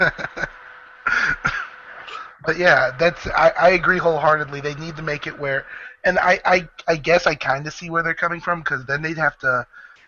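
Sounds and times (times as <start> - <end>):
speech: 0.0 - 0.4, 2.4 - 9.9
laughter: 0.0 - 9.6
faint breathy noise: 0.4 - 2.4, 5.6 - 6.1, 9.7 - 10.0
person coughing: 1.1 - 2.4.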